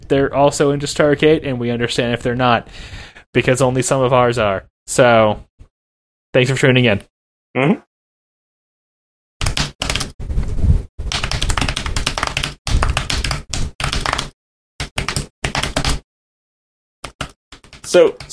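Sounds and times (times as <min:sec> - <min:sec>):
speech: 0:00.1 - 0:05.5, 0:06.3 - 0:07.9, 0:17.9 - 0:18.3
heavy rapid typing on a computer keyboard: 0:09.4 - 0:10.1, 0:11.1 - 0:16.0, 0:17.0 - 0:18.3.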